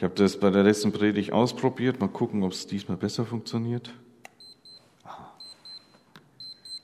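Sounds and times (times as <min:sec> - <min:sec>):
speech: 0:00.0 - 0:04.1
alarm clock beeping in high-pitched electronic tones: 0:04.4 - 0:06.8.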